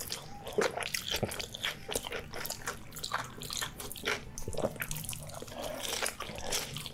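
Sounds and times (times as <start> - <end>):
man chewing a burger and french fries: 0.0 - 6.9.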